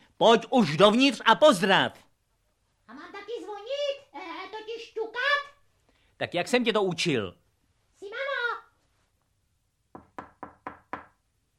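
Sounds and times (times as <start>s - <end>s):
speech: 0.2s - 2.0s, 6.2s - 7.4s
light knocking on a door: 9.9s - 11.2s.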